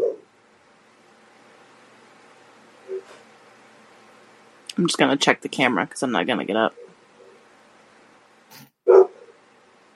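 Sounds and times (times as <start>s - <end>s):
low hiss: 0.0s - 8.5s
speech: 4.8s - 6.8s
dog barks: 8.9s - 9.3s.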